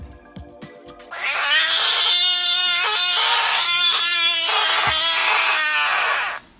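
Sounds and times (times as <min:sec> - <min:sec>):
frog call: 0:01.1 - 0:06.4.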